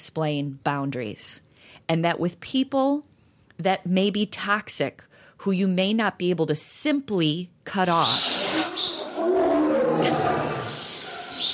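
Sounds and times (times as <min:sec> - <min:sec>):
speech: 0:00.0 - 0:08.4
tiger roaring: 0:08.0 - 0:11.5.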